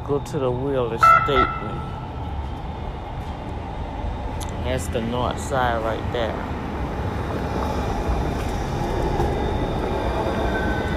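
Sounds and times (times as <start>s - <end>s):
southbound train running along railway tracks: 0.0s - 10.9s
speech: 0.1s - 2.1s, 4.6s - 6.6s.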